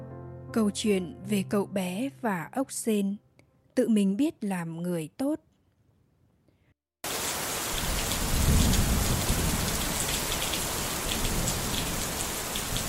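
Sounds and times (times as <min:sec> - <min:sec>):
speech: 0:00.5 - 0:03.2, 0:03.8 - 0:05.5
heavy rain: 0:07.0 - 0:12.8.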